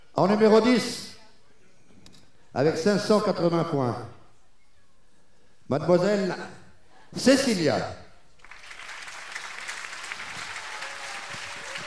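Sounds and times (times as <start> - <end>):
speech: 0.2 - 1.1, 2.6 - 4.2, 5.7 - 8.0
audience applause at a themed evening contest final: 8.4 - 11.8.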